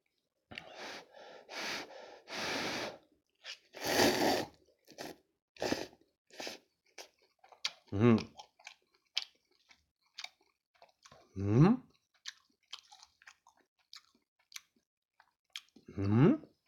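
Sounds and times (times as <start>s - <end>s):
person slurping ramen noodles in a thin broth: 0.6s - 6.7s
chewing ramen noodles: 6.4s - 11.3s, 11.9s - 16.6s
speech: 7.9s - 8.3s.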